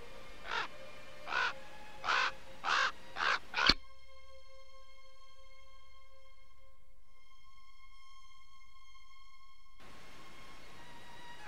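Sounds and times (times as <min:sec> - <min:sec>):
black birds cawing harshly: 0:00.4 - 0:03.8.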